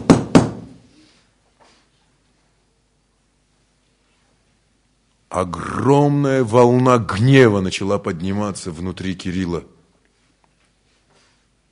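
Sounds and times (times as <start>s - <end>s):
knocking on a door: 0.0s - 0.8s
speech: 5.4s - 9.7s.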